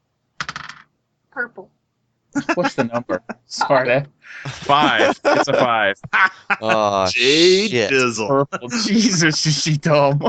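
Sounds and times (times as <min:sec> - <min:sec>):
die clattering across a hard tabletop: 0:00.4 - 0:00.9
speech: 0:01.4 - 0:01.8, 0:02.4 - 0:10.2
laughter: 0:02.4 - 0:03.5, 0:04.3 - 0:10.2.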